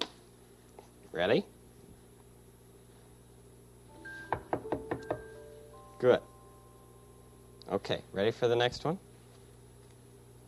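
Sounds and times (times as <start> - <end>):
faint hum: 0.0 - 10.4
speech: 1.2 - 1.6, 6.0 - 6.3, 7.7 - 9.1
sharp knocks: 4.3 - 5.3.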